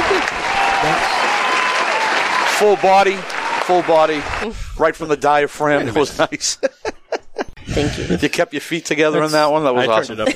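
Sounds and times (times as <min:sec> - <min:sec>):
laughter: 0:00.0 - 0:01.1, 0:05.6 - 0:10.3
applause from a group: 0:00.0 - 0:04.5
speech: 0:02.6 - 0:07.0, 0:07.7 - 0:10.3.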